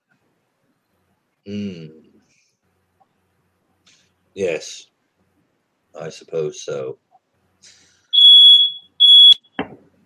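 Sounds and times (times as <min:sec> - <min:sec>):
speech: 0:01.4 - 0:02.0, 0:04.4 - 0:04.9, 0:06.0 - 0:07.0
fire alarm ringing in two shrill electronic tones: 0:08.2 - 0:09.5.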